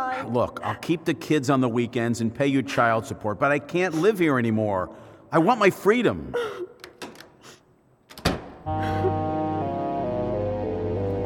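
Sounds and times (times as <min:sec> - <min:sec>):
speech: 0:00.2 - 0:06.7, 0:08.7 - 0:09.2
house door opening and closing: 0:06.8 - 0:07.4, 0:08.0 - 0:08.7
sustained music with steady tones: 0:08.7 - 0:11.2.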